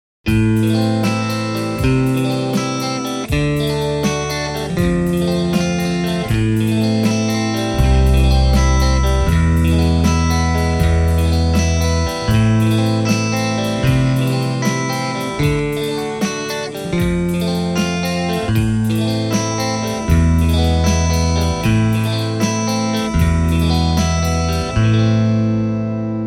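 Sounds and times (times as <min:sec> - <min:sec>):
Stratocaster electric guitar through JCM800 amplifier: 0:00.3 - 0:26.2.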